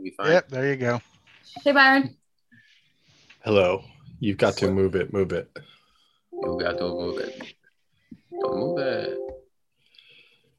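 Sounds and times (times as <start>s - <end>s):
speech: 0.0s - 2.2s, 3.4s - 5.8s, 6.4s - 7.6s, 8.4s - 9.2s
phone text message ringtone chime: 6.4s - 7.5s.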